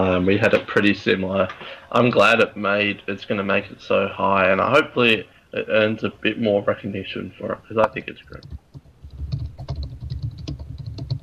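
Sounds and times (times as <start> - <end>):
speech: 0.2 - 8.6
typing on a computer keyboard: 7.9 - 11.2.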